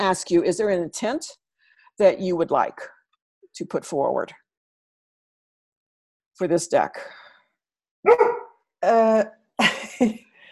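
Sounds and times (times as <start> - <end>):
speech: 0.0 - 1.4, 2.0 - 3.0, 3.6 - 4.4, 6.4 - 7.2, 8.0 - 10.2
dog barking: 8.0 - 8.6.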